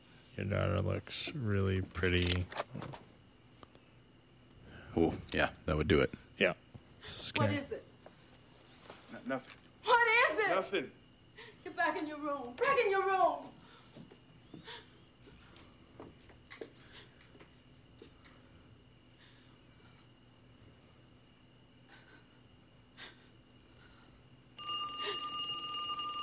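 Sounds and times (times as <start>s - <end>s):
speech: 0.4s - 3.1s, 5.0s - 7.9s, 9.1s - 13.6s
telephone bell ringing: 24.6s - 26.2s.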